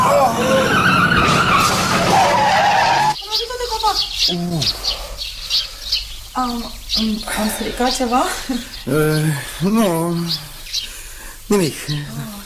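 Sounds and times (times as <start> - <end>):
car tires screeching under hard braking: 0.0 - 3.2
speech: 4.3 - 4.8, 6.4 - 10.8, 11.5 - 12.4.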